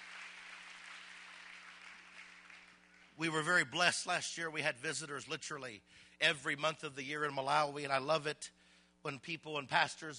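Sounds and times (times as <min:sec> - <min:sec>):
audience clapping in a large room: 0:00.0 - 0:03.5
speech: 0:03.2 - 0:10.1.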